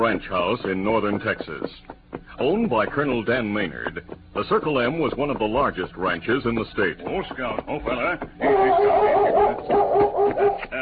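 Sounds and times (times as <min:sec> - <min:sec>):
speech: 0:00.0 - 0:09.8
German shepherd barking and yelping excitedly at a ranch house: 0:08.4 - 0:10.7.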